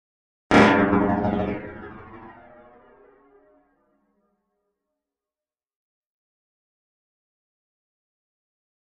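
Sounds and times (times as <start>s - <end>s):
hard metallic impact: 0.5s - 2.9s.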